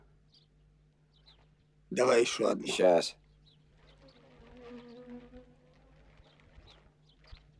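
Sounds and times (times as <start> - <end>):
speech: 1.9 - 3.2
bee buzzing while pressed against skin to sting: 3.9 - 6.3.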